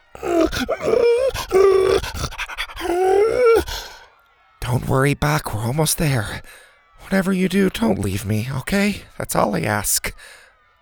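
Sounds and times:
dog whining in eager anticipation: 0.2s - 4.0s
speech: 0.6s - 1.0s, 4.9s - 10.4s.

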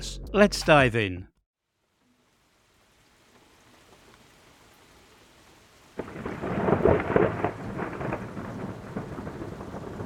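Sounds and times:
speech: 0.3s - 1.3s
steady wash of falling rain: 1.6s - 10.0s
low rumble of thunder in a summer thunderstorm: 6.0s - 10.0s.

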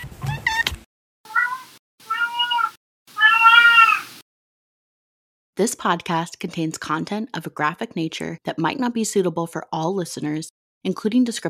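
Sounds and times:
cat meowing: 1.3s - 4.2s
speech: 5.6s - 11.4s.

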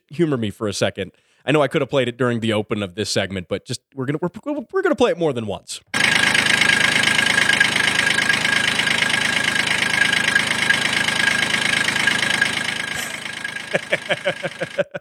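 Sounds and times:
speech: 0.1s - 6.2s, 13.7s - 15.0s
tractor engine idling: 6.0s - 14.8s
laughter: 13.0s - 15.0s.

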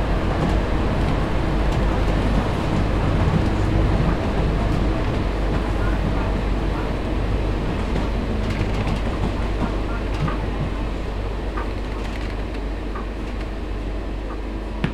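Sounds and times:
train rumbling on rails: 0.0s - 14.9s
scattered clicks: 11.5s - 13.5s.

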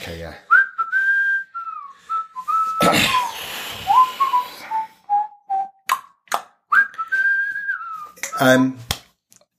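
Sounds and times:
speech: 0.0s - 0.5s, 2.8s - 3.2s, 8.4s - 8.9s
person whistling a meandering tune: 0.5s - 8.8s.

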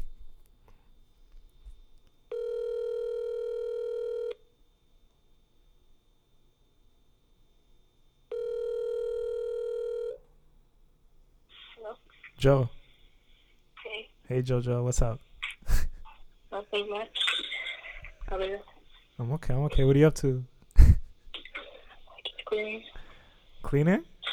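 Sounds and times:
phone call buzzing ring tone: 2.3s - 4.4s, 8.3s - 10.3s
speech: 12.4s - 12.8s, 14.3s - 15.8s, 16.7s - 17.2s, 18.3s - 20.5s, 22.5s - 23.0s, 23.7s - 24.1s.

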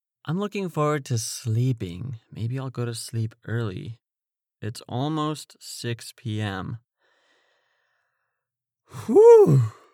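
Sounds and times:
speech: 0.2s - 4.0s, 4.6s - 6.8s, 8.9s - 9.8s
person yawning: 8.9s - 9.9s.

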